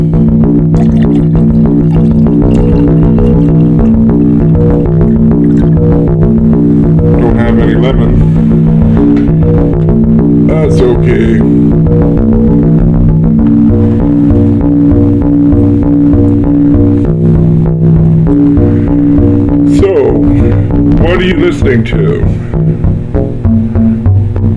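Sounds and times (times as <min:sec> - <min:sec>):
sustained buzzy Karplus-Strong synthesizer tones with strong harmonics: 0:00.0 - 0:24.5.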